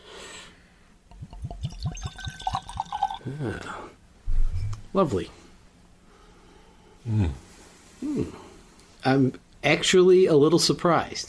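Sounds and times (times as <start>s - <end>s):
high-proof whiskey glugging from a bottle into a glass: 1.1s - 3.4s
speech: 3.3s - 4.0s, 4.9s - 5.4s, 7.1s - 7.4s, 8.0s - 8.4s, 9.0s - 11.2s.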